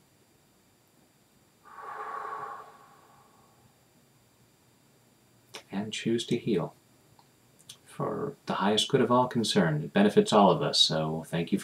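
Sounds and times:
deep breath during a tapping session: 1.7s - 3.7s
speech: 5.8s - 6.8s, 8.0s - 11.6s.

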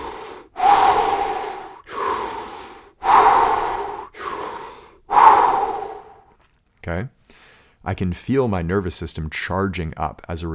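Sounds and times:
person doing forceful rapid breathing exercise breaths: 0.0s - 6.3s
speech: 6.9s - 7.2s, 7.8s - 10.5s.

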